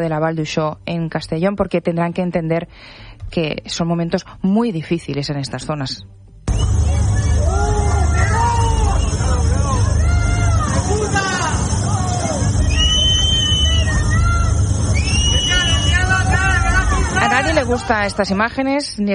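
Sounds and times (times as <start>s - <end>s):
speech: 0.0s - 6.2s, 17.7s - 19.1s
crowd of many voices shouting and jeering: 6.5s - 18.5s
low rumbling noise: 6.5s - 18.9s
angry yells: 6.9s - 18.3s.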